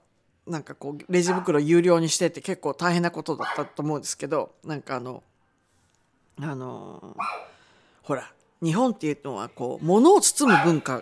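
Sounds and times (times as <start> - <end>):
speech: 0.5 - 5.3, 6.4 - 10.9
dog barking at departing guests in a hallway: 1.2 - 1.6, 3.4 - 3.8, 7.2 - 7.6, 10.4 - 10.9.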